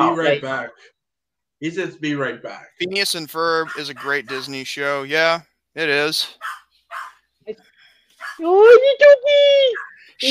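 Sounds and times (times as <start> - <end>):
speech: 0.2 - 1.0, 1.6 - 6.6, 7.5 - 7.7, 8.4 - 10.2
chihuahua yapping: 3.6 - 4.4, 6.4 - 7.2, 8.2 - 8.5, 9.7 - 10.0
chihuahua whining: 9.7 - 10.2.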